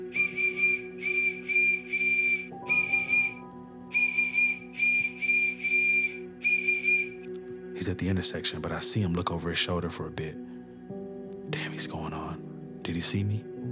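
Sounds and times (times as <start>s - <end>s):
shrill whistle blown out of a window as an SOS distress signal: 0.0s - 7.3s
speech: 7.8s - 10.5s, 12.9s - 13.6s.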